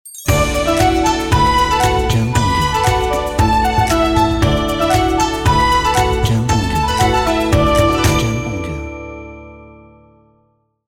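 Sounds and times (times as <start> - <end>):
Chinese New Year logo jingle: 0.0 - 10.4.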